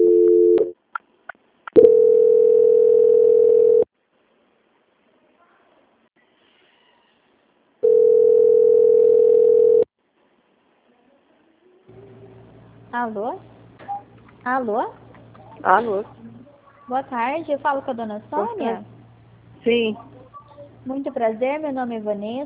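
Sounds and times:
telephone line tones during a call transfer: 0:00.0 - 0:00.7, 0:01.8 - 0:03.9, 0:07.8 - 0:09.9
speech: 0:14.5 - 0:15.0, 0:15.6 - 0:16.2, 0:16.9 - 0:18.9, 0:19.6 - 0:20.1, 0:20.8 - 0:22.4.

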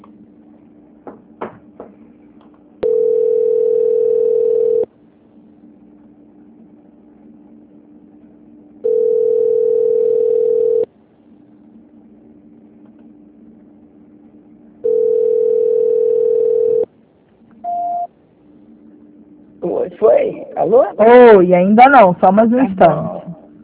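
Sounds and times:
electronic telephone tones during a call transfer: 0:02.8 - 0:04.9, 0:08.8 - 0:10.9, 0:14.8 - 0:16.9, 0:17.6 - 0:18.1
speech: 0:20.6 - 0:23.2.

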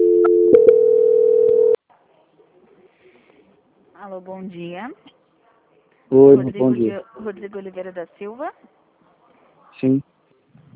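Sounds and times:
steady telephone tone while a call is transferred: 0:00.0 - 0:01.8
speech: 0:04.2 - 0:05.2, 0:06.1 - 0:08.8, 0:09.8 - 0:10.1.

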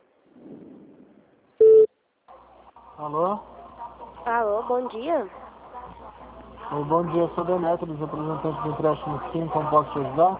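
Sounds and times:
faint low murmur: 0:00.0 - 0:10.3
telephone tone as a call is transferred to customer service: 0:01.6 - 0:01.9
speech: 0:03.0 - 0:03.5, 0:04.2 - 0:05.4, 0:06.7 - 0:10.3.

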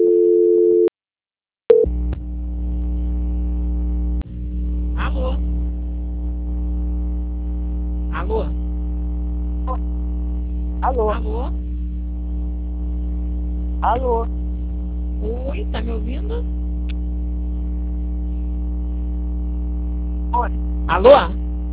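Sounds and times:
telephone ringing tone on a call: 0:00.0 - 0:00.9
low continuous electrical hum: 0:01.9 - 0:21.7
speech: 0:11.0 - 0:11.6, 0:13.8 - 0:14.4, 0:15.6 - 0:16.7, 0:20.4 - 0:21.4.

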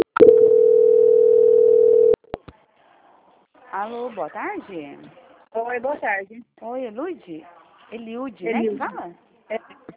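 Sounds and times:
telephone call transfer tone: 0:00.0 - 0:02.2
speech: 0:03.8 - 0:09.2.

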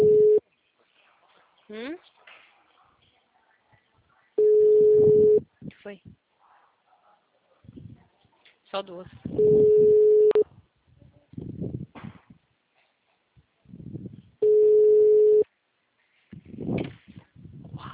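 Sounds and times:
unanswered phone call ringback tones: 0:00.0 - 0:00.4, 0:04.4 - 0:05.4, 0:09.4 - 0:10.4, 0:14.4 - 0:15.4
speech: 0:05.9 - 0:06.2, 0:08.7 - 0:10.0.

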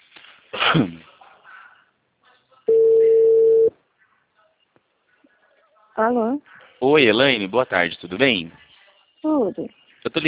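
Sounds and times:
speech: 0:00.7 - 0:01.1, 0:06.0 - 0:08.6, 0:09.2 - 0:10.2
telephone ring tone of a call being placed: 0:02.7 - 0:03.7.

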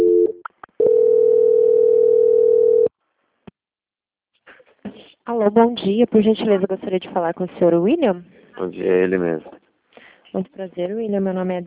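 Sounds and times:
steady telephone line tone during a call transfer at a bank: 0:00.0 - 0:02.9
speech: 0:05.4 - 0:09.6, 0:10.3 - 0:11.6.

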